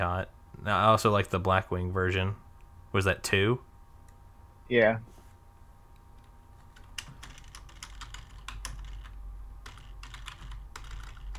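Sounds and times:
speech: 0.0 - 3.7, 4.7 - 5.2
low steady hum: 0.0 - 11.3
typing on a computer keyboard: 6.7 - 11.3.

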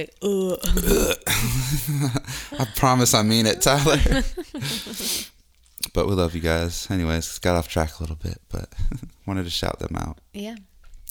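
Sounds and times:
speech: 0.0 - 5.3, 6.0 - 10.7
person burping: 0.2 - 2.0
laughter: 1.3 - 5.2.

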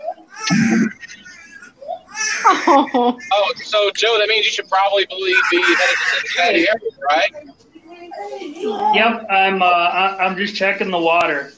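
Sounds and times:
laughter: 0.0 - 1.5, 2.3 - 9.6
baby whining: 0.0 - 2.7, 5.2 - 9.3
speech: 2.7 - 11.5.

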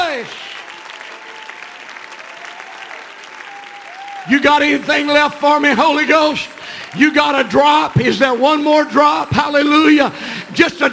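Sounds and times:
audience clapping at a preacher's call: 0.0 - 9.6
speech: 4.2 - 10.9.

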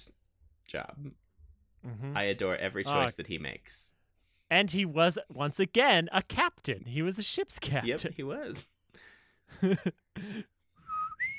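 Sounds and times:
speech: 0.0 - 1.2, 1.8 - 8.7, 9.5 - 10.5
person whistling a call imitating a ship captain's signal whistle: 10.8 - 11.3.

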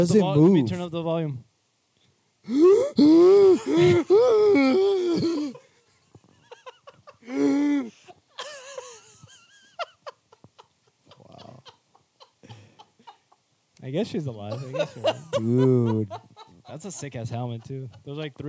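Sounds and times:
speech: 0.0 - 1.5, 2.4 - 5.6, 13.8 - 18.4
injured cyclist's strained gasping and wheezing breaths: 2.4 - 5.7, 7.2 - 8.5
laughter: 3.1 - 13.4, 14.0 - 18.4.

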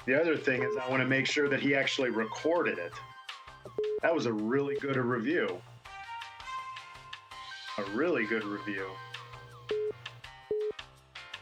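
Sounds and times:
speech: 0.0 - 5.7, 7.8 - 9.1
phone call electronic ringing tones: 0.6 - 1.1, 3.8 - 4.0, 9.0 - 10.7.

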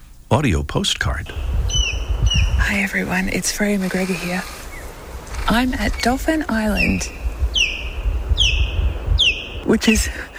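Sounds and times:
steady low rumble: 0.0 - 10.3
speech: 0.3 - 1.5, 2.3 - 4.6, 5.5 - 7.2, 9.7 - 10.3
osprey whistles at Dauphin Island on the Gulf Coast of Alabama: 1.4 - 9.6.

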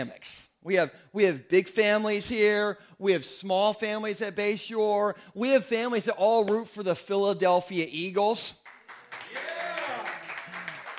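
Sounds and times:
speech: 0.0 - 8.6
crowd clapping: 8.6 - 10.9.

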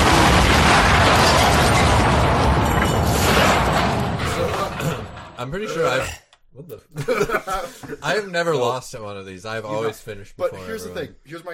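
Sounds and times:
car bomb explosion: 0.0 - 5.4
speech: 5.5 - 11.5
laughter: 6.9 - 8.0.

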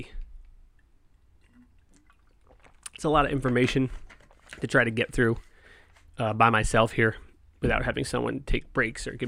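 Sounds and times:
person sipping water: 1.4 - 3.0
soft wet slurping and mouth clicks: 1.4 - 3.0
speech: 3.0 - 5.5, 6.2 - 9.2.

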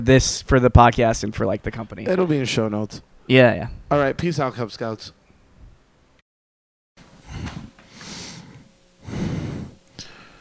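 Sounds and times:
speech: 0.0 - 5.2
breathy exhales and snuffling breaths into a microphone: 7.2 - 10.3.

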